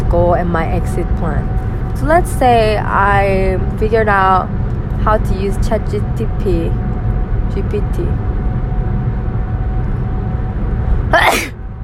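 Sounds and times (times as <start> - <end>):
steady low rumble: 0.0 - 11.8
speech: 0.4 - 6.9, 7.5 - 8.3
sharp loud sneeze: 11.1 - 11.6.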